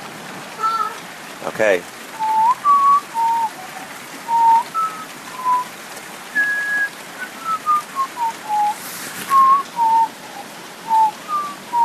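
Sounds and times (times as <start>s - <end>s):
steady rain pattering outdoors: 0.0s - 11.8s
speech: 1.4s - 2.0s
person whistling a wandering melody: 2.2s - 3.7s, 4.3s - 5.7s, 6.3s - 11.8s.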